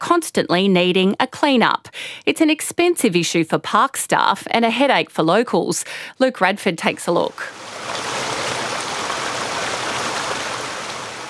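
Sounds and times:
speech: 0:00.1 - 0:08.1
stream rushing at a waterfall gully in South Australia: 0:07.5 - 0:11.2.

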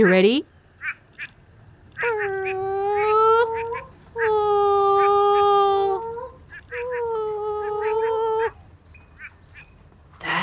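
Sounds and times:
speech: 0:00.0 - 0:00.6
moaning frog calling: 0:02.0 - 0:08.6.

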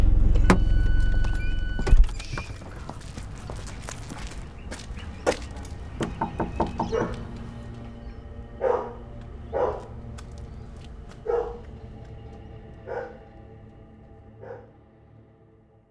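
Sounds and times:
low engine rumble: 0:00.0 - 0:14.4
footsteps: 0:00.8 - 0:08.0, 0:08.7 - 0:14.6
knocking on a front door: 0:06.0 - 0:07.2.

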